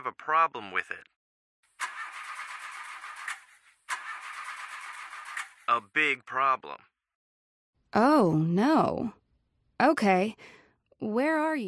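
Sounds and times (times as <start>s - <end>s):
speech: 0.1s - 1.2s, 5.7s - 6.9s, 7.9s - 9.2s, 9.8s - 11.6s
new car engine cranking, starting and running: 1.8s - 5.8s.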